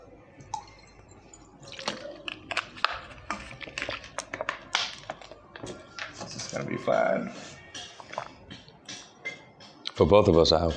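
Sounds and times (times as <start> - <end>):
water pouring into a glass: 0.3 - 3.4
speech: 6.6 - 7.5, 10.0 - 10.7.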